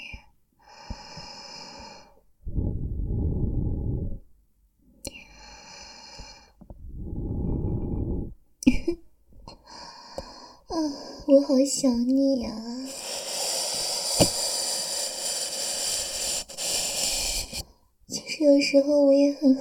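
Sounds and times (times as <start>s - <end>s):
breathing: 0.0s - 4.3s, 5.0s - 8.4s, 9.5s - 11.4s, 12.8s - 17.9s
speech: 10.8s - 12.7s, 18.5s - 19.5s.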